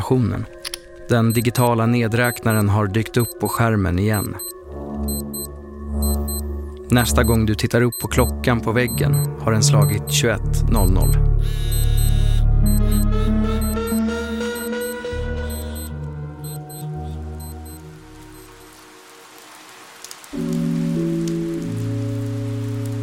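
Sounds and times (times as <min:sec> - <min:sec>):
speech: 0:00.1 - 0:04.5, 0:06.9 - 0:11.8
loud sustained electronic music tones: 0:01.2 - 0:03.4, 0:04.2 - 0:18.7
heavy rain lashing down on an empty football field after dark: 0:17.0 - 0:23.0.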